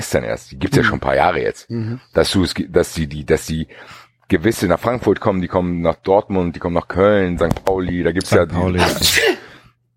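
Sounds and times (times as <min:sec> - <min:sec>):
speech: 0:00.1 - 0:09.4
person sneezing: 0:08.8 - 0:09.6.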